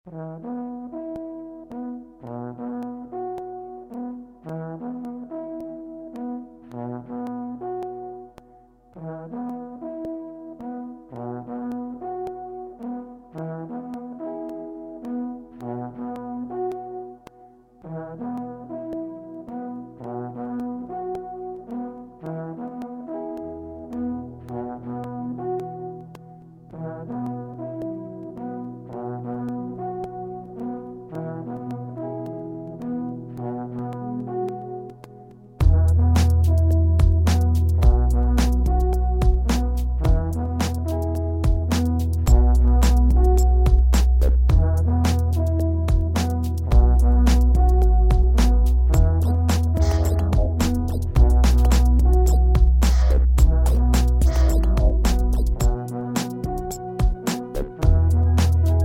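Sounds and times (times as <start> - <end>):
alphorn: 35.6 - 58.8.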